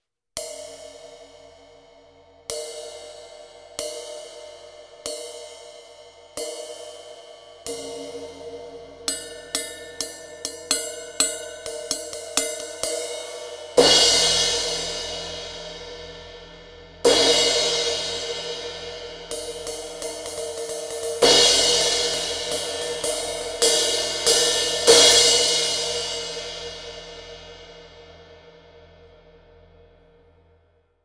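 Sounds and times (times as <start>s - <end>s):
Meinl Cust Shop 17 crash cymbal: 7.6s - 28.2s.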